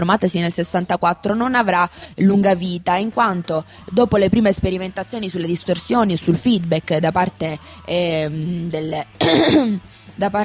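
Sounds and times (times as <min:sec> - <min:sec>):
speech: 0:00.0 - 0:10.4
person clearing their throat: 0:09.2 - 0:09.8
person coughing: 0:09.2 - 0:09.8.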